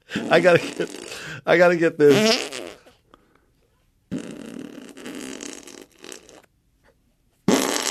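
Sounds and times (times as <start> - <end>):
grown man making armpit farts by hand: 0.1 - 1.2, 2.1 - 3.0, 4.1 - 6.5, 7.5 - 7.8
speech: 0.1 - 2.5.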